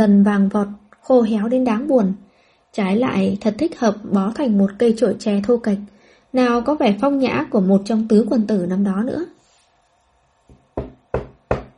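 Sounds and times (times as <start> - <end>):
speech: 0.0 - 9.4
soft knocking on a door: 10.5 - 11.7.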